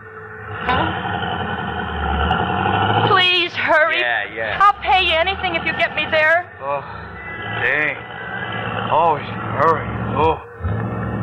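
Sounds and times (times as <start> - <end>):
car engine idling in heavy traffic: 0.4 - 11.2
speech: 6.2 - 8.0.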